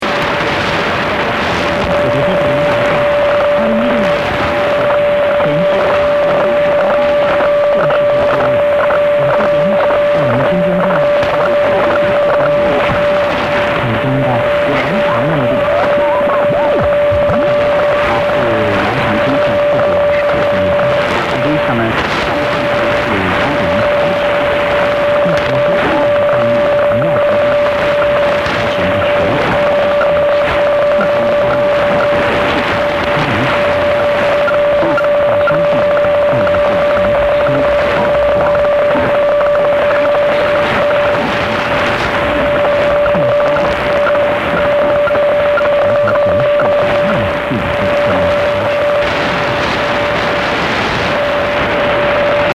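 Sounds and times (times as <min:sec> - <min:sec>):
shortwave radio signal on 9460 kHz: 0:00.0 - 0:52.5.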